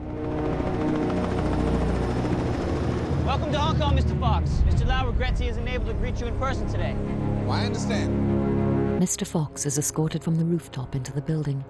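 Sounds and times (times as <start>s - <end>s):
helicopter landing on a tower block roof in Hong Kong: 0.0s - 6.7s
speech: 3.5s - 8.4s, 9.0s - 11.6s.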